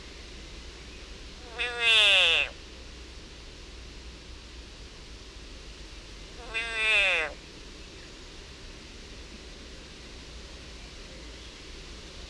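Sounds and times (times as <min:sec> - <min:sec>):
frog screaming in agony: 0:01.4 - 0:02.6, 0:06.4 - 0:07.4.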